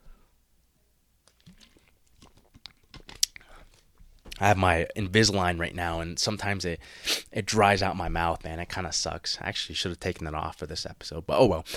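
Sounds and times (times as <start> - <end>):
person sipping a drink: 1.3 - 3.8
speech: 4.4 - 11.7.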